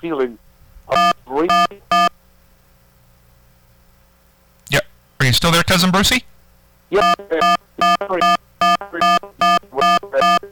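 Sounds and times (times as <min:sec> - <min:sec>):
speech: 0:00.0 - 0:01.6, 0:05.4 - 0:06.3, 0:06.9 - 0:08.4
telephone dialing tones on a live radio call line: 0:07.0 - 0:10.4.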